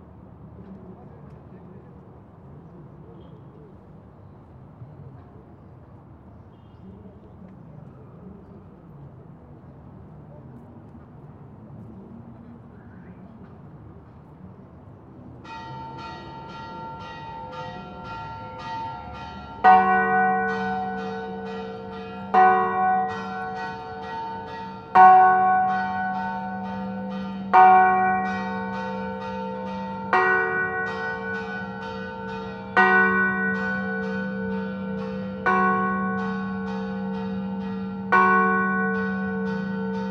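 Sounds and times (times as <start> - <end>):
cathedral bells tolling: 15.4 - 40.0.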